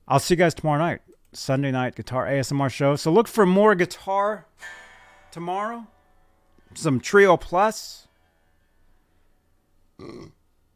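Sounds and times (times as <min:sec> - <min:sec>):
speech: 0:00.1 - 0:06.0, 0:06.7 - 0:08.1, 0:10.0 - 0:10.4
short loud burp: 0:10.0 - 0:10.5.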